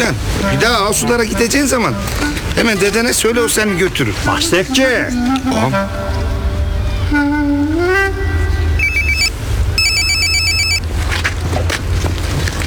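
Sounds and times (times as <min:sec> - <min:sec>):
speech: 0:00.0 - 0:06.3
steady low rumbling background: 0:00.0 - 0:12.6
phone ringing with an electronic melodic ringtone: 0:08.8 - 0:10.8.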